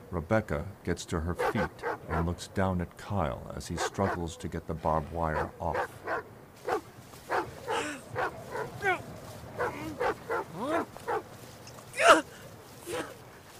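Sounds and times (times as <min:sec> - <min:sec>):
speech: 0:00.1 - 0:06.0
several dogs barking: 0:01.4 - 0:02.4, 0:03.8 - 0:04.4, 0:05.3 - 0:11.4, 0:12.9 - 0:13.5.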